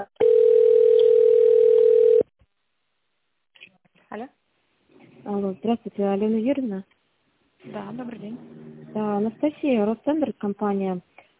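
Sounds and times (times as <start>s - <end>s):
telephone line tones while a call is transferred: 0.2s - 2.3s
speech: 5.7s - 7.0s, 7.7s - 11.1s.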